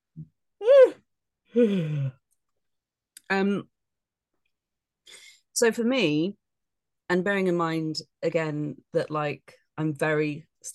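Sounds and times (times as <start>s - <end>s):
person yawning: 0.6s - 1.0s, 1.6s - 2.2s
speech: 1.6s - 2.2s, 3.3s - 3.7s, 5.1s - 6.4s, 7.1s - 10.7s.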